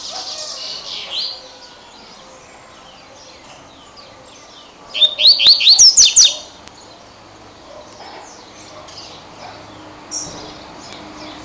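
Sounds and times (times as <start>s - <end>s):
double-collared seedeater singing rising slurred whistles: 5.0s - 6.5s.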